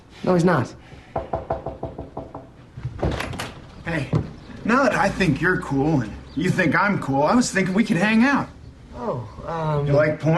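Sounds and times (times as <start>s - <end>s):
speech: 0.2s - 1.3s, 3.9s - 10.3s
firm knocking on a front door: 1.0s - 4.4s.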